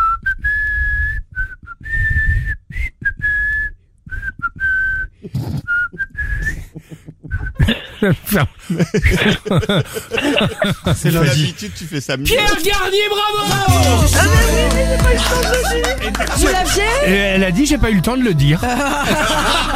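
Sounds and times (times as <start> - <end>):
person whistling a tune: 0.0 - 7.7
breathy chuckling: 5.2 - 12.2, 18.6 - 19.7
speech: 8.0 - 19.7.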